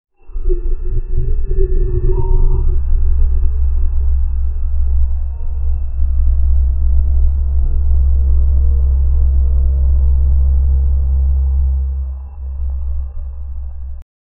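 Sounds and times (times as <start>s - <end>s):
low rumbling voice speaking an alien language: 0.2s - 14.0s.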